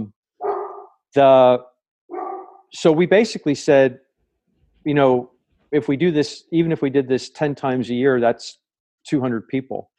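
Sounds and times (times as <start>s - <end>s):
dog barking at someone: 0.4s - 1.0s, 2.1s - 2.7s
speech: 1.2s - 1.7s, 2.7s - 4.0s, 4.8s - 9.9s.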